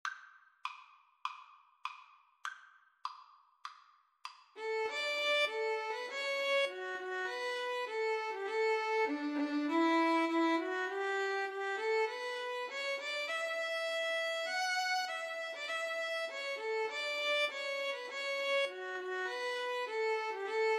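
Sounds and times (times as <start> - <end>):
violin and viola duet playing an anthem: 4.6 - 20.7.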